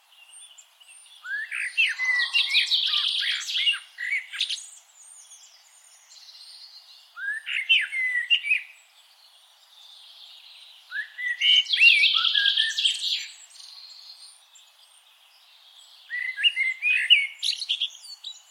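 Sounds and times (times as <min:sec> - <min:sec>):
Turdus merula common blackbird singing: 0:00.1 - 0:18.4.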